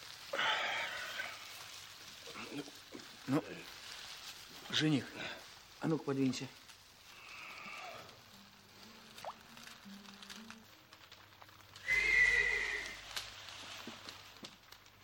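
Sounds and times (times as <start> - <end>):
soft patter: 0.0 - 15.0
speech: 2.6 - 3.6, 4.8 - 6.6
restless horses neighing past midnight: 11.8 - 13.0.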